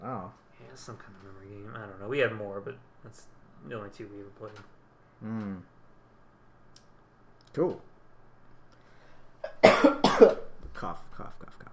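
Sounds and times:
speech: 0.3 - 5.7, 7.5 - 7.9, 9.7 - 11.7
person coughing sharply: 9.4 - 10.5.

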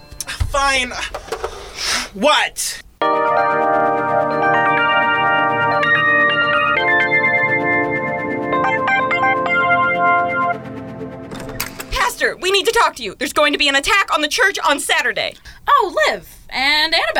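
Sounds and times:
speech: 0.6 - 3.1, 12.4 - 17.1
loud melodic phone ringtone with repeating electronic tune: 3.0 - 10.6.

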